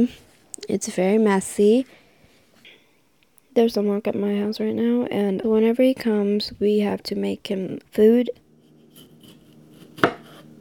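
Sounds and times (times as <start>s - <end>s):
speech: 0.0s - 2.0s, 3.6s - 8.4s
sharp knife chopping through tomatoes in a kitchen: 8.6s - 10.5s.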